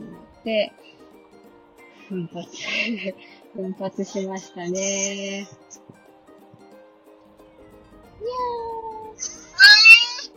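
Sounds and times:
speech: 0.4 - 1.0, 2.1 - 5.9
cat meowing: 8.4 - 10.3.

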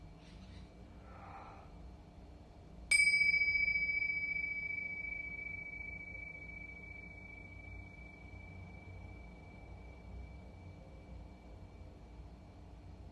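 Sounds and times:
low steady background hum: 0.0 - 13.1
Tibetan singing bowl struck and ringing: 2.9 - 12.6.

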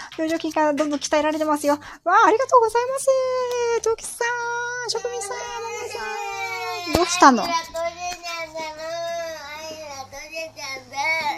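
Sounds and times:
speech: 0.2 - 8.9
young child crying over melted ice cream: 4.9 - 11.3.

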